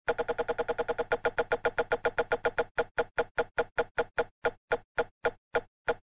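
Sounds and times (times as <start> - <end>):
spinning ticks: 0.1 - 6.0.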